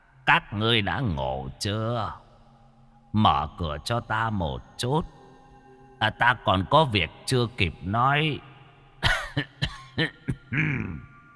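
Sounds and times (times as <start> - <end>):
speech: 0.3 - 2.2, 3.1 - 5.2, 6.0 - 11.1
old man coughing violently outside a door: 9.0 - 11.1.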